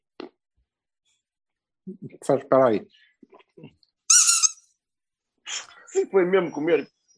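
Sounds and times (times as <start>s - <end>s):
speech: 1.9s - 3.8s, 6.0s - 7.0s
squeaky dog toy ball squeaking: 4.1s - 4.7s.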